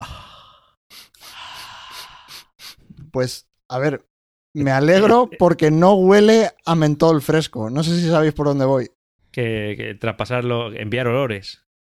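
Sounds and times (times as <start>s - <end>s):
breath blown into a microphone: 0.0s - 3.0s
speech: 3.1s - 11.8s.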